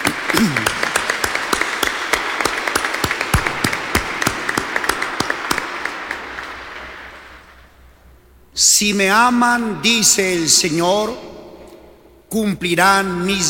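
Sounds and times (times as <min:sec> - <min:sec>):
audience applause for mothers: 0:00.0 - 0:07.5
speech: 0:08.8 - 0:11.3, 0:12.3 - 0:13.4.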